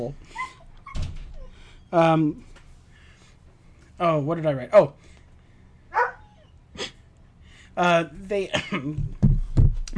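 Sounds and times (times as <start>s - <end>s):
speech: 0.0s - 0.6s, 1.9s - 2.5s, 4.0s - 5.1s, 7.8s - 9.2s
dog whimpering: 0.3s - 1.9s, 6.0s - 6.6s.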